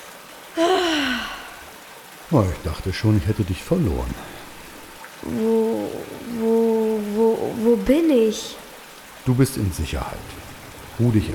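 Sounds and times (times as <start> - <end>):
speech: 0.6 - 1.1, 2.3 - 4.4, 5.2 - 8.6, 9.2 - 10.4, 11.0 - 11.3
person gasping after landing on an animal's back: 0.6 - 1.7.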